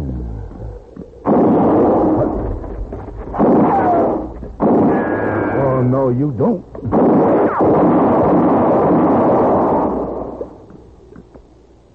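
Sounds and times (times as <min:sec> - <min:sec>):
faint sharp crack: 0:01.0 - 0:05.8, 0:06.8 - 0:11.4
loud gunshot-like blast: 0:01.2 - 0:05.6, 0:06.8 - 0:10.6
speech: 0:06.1 - 0:07.1.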